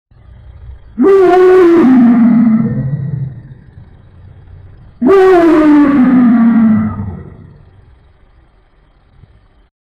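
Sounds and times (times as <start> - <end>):
lion giving long rough harmonic roars: 0.8 - 7.9.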